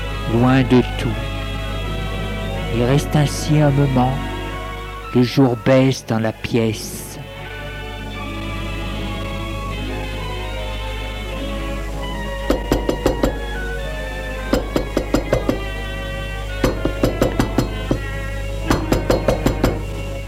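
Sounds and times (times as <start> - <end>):
soft sustained tones: 0.0 - 20.2
steady low hum: 0.0 - 20.2
speech: 0.3 - 1.3, 2.7 - 4.3, 5.1 - 7.1
knocking on a door: 12.5 - 13.4, 14.5 - 15.7, 16.6 - 18.1, 18.7 - 19.9.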